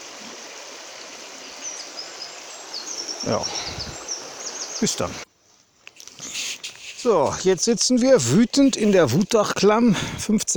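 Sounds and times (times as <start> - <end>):
rushing water of a fast mountain stream: 0.0 - 5.3, 6.2 - 10.5
faint brief chirps: 1.6 - 5.2
speech: 3.2 - 3.9, 4.8 - 5.2, 7.0 - 10.5.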